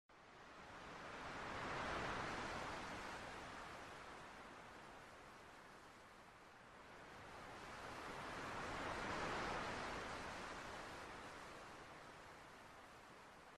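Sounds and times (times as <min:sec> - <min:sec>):
ocean: 0:00.1 - 0:13.5.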